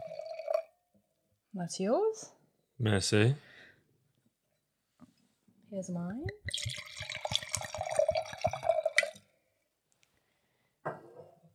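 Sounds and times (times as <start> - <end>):
red wine glugging and splashing into a glass: 0.0 - 0.7, 6.3 - 9.2
speech: 1.6 - 3.5, 5.7 - 7.3.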